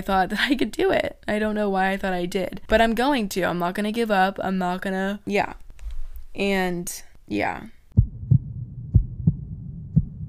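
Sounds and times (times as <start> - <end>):
speech: 0.0 - 5.6, 6.3 - 7.8
low heartbeat-like thumps: 8.0 - 10.2.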